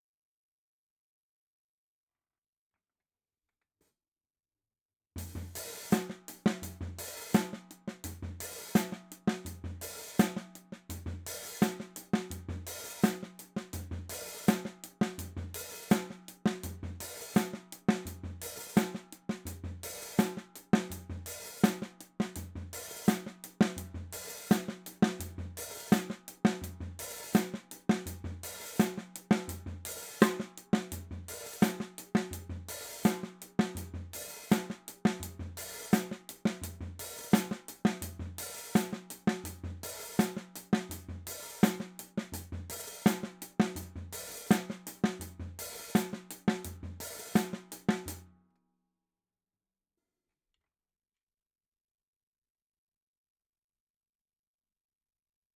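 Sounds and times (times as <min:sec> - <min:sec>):
jungle snare drum: 0:05.2 - 0:48.2.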